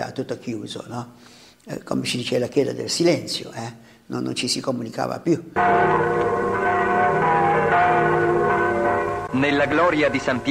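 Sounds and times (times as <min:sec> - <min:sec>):
speech: 0:00.0 - 0:07.2, 0:09.3 - 0:10.4
church bells of Rome pealing at the opening of the Second Vatican Council: 0:05.6 - 0:10.4.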